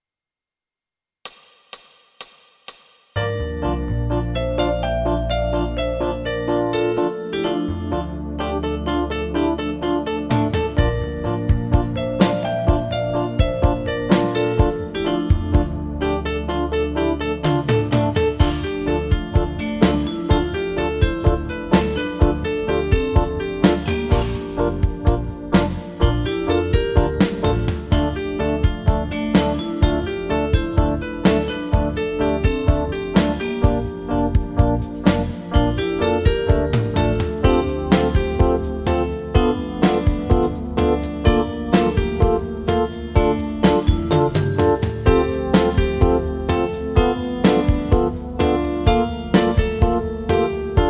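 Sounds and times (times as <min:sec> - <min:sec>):
piano playing: 0:03.2 - 0:50.8.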